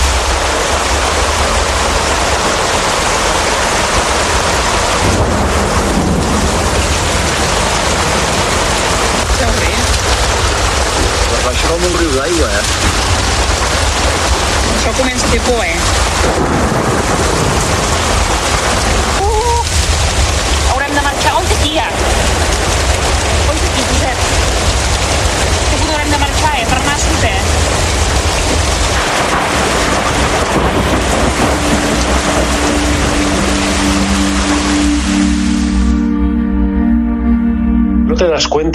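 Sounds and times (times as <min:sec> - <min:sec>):
rushing floodwater: 0:00.0 - 0:36.0
heavy rain in a thunderstorm: 0:00.0 - 0:37.1
speech: 0:15.0 - 0:16.9, 0:38.2 - 0:38.7.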